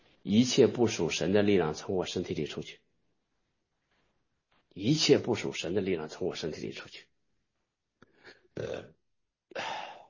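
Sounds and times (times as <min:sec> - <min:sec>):
speech: 0:00.2 - 0:02.8, 0:04.8 - 0:07.1, 0:08.6 - 0:09.7
person burping on purpose as a practiced exercise: 0:08.6 - 0:10.0.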